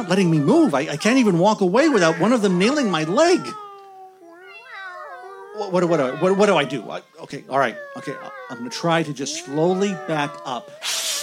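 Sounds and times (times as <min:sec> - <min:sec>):
speech: 0:00.0 - 0:03.6, 0:05.6 - 0:11.2
Siamese cats caterwauling: 0:00.0 - 0:11.2.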